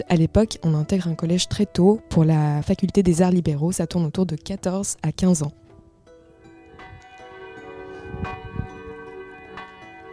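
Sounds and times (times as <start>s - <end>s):
speech: 0.0s - 5.6s
large bell of a neighbouring convent tolling in the morning: 6.3s - 10.1s.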